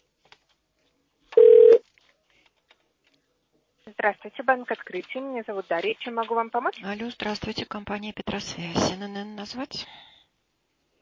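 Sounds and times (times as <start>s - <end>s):
telephone ringback tone: 1.4s - 1.8s
speech: 3.9s - 10.1s.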